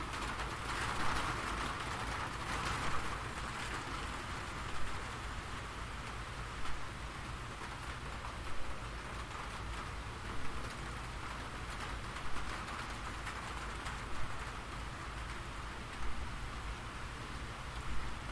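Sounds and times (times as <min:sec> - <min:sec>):
gentle rain patter: 0:00.0 - 0:18.3.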